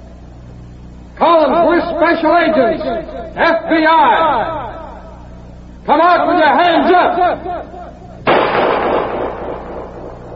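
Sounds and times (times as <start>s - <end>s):
speech: 2.0s - 4.8s, 5.8s - 7.8s
loud gunshot fired at agents in the dark: 8.3s - 10.3s.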